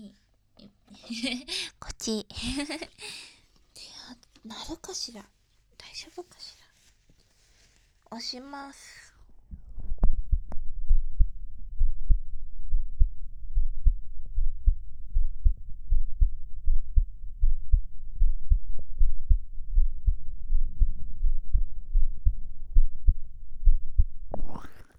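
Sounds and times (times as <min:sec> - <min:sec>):
speech: 0:01.1 - 0:03.3, 0:04.4 - 0:05.4, 0:06.0 - 0:06.6, 0:08.1 - 0:09.0
rapid heartbeat through stethoscope-style microphone: 0:09.5 - 0:24.7.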